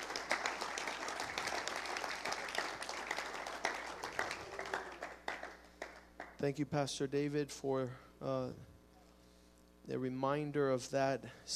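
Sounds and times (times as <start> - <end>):
church congregation applauding during a bilingual worship service: 0.0 - 6.5
speech: 6.4 - 8.7, 9.9 - 11.5.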